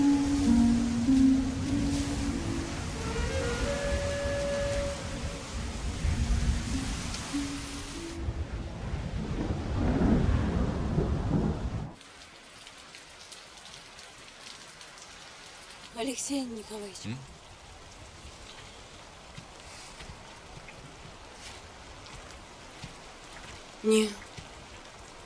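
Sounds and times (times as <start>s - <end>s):
rain falling as the sky darkens: 0.0s - 25.2s
speech: 16.2s - 17.3s, 23.8s - 24.2s.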